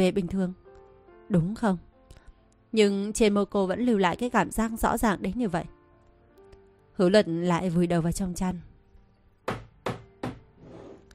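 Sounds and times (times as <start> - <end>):
speech: 0.0 - 0.6, 1.3 - 1.9, 2.7 - 5.8, 7.0 - 8.7
knocking on a door: 9.5 - 10.5.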